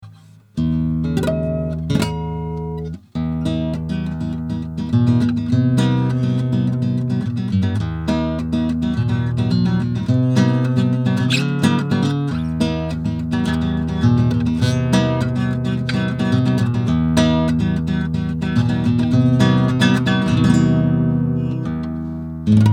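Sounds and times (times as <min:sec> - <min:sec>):
nylon-string guitar recorded through AMS Neve 8801 M 500: 0:00.0 - 0:22.7.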